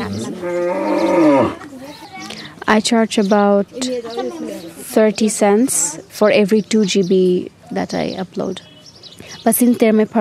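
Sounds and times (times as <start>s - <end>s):
single cow mooing: 0.0s - 1.6s
speech: 0.1s - 0.8s, 2.8s - 3.9s, 5.0s - 8.7s, 9.4s - 10.2s.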